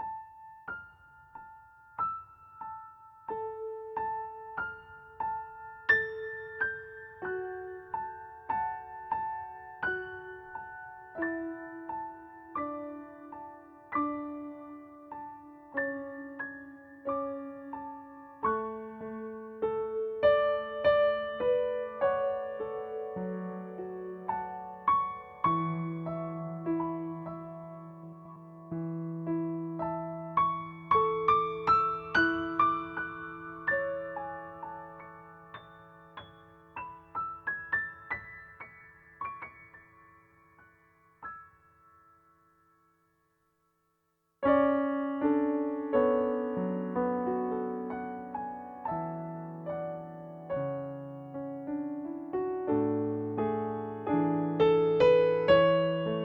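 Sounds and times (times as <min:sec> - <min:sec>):
piano improvisation: 0:00.0 - 0:41.7, 0:44.4 - 0:56.2.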